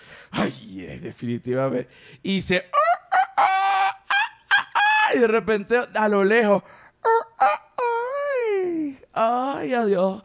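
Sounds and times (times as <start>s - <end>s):
speech: 0.4s - 2.8s, 5.2s - 7.2s, 9.2s - 10.2s
person imitating rooster crowing: 2.7s - 5.2s, 7.0s - 8.6s.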